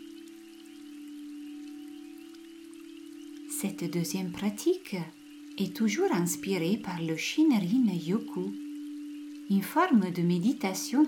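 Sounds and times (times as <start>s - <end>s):
soft steady rain: 0.0s - 11.0s
sustained low humming tone: 0.0s - 11.0s
speech: 3.6s - 8.6s, 9.5s - 11.0s.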